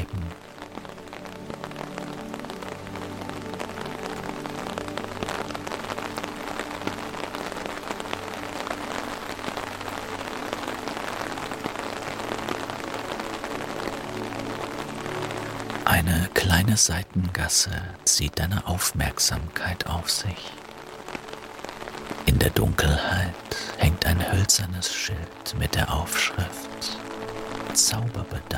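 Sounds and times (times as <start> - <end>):
steady rain falling on a street at night: 0.0 - 28.5
speech: 16.7 - 20.6, 22.4 - 27.0, 27.8 - 28.5.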